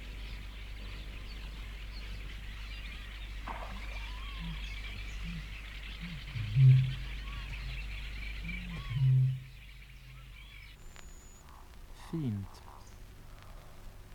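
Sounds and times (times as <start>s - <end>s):
low moaning bird calls at night: 0.0s - 14.1s
steady low hum: 0.0s - 14.1s
faint high-pitched birdsong from other birds: 0.2s - 11.5s
speech: 12.1s - 12.7s.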